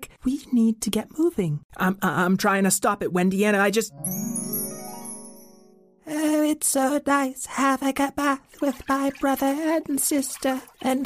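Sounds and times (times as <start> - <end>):
speech: 0.2 - 4.5, 6.6 - 11.0
shimmering tinkling chime with bell-like tones: 3.9 - 6.1.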